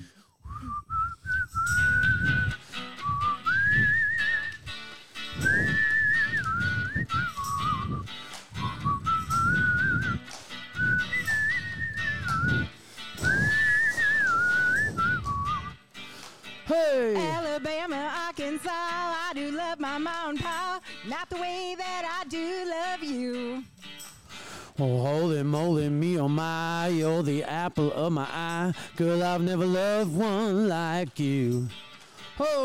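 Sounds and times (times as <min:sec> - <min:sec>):
person whistling a song melody: 0:00.0 - 0:16.0, 0:17.2 - 0:17.5
rhythmic strummed accompaniment: 0:01.5 - 0:32.6
speech: 0:24.8 - 0:31.8, 0:32.4 - 0:32.6.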